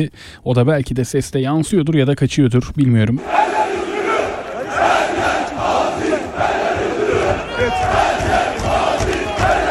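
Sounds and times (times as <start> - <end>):
speech: 0.0 - 3.8
large crowd of football fans chanting in unison: 3.2 - 9.7.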